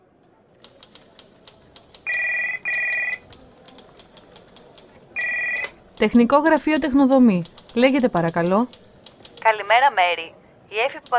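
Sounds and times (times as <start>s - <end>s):
light clicking like typing: 0.6s - 9.5s, 11.0s - 11.1s
telephone ringing with long buzzing bursts: 2.0s - 3.3s, 5.1s - 6.6s
speech: 6.0s - 8.8s, 9.4s - 11.1s.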